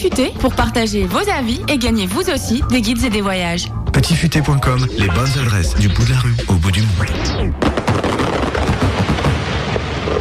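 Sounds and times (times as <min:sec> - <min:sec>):
speech: 0:00.0 - 0:08.3
dense barrage of fireworks bursting with crackling pops and booms: 0:07.6 - 0:10.1.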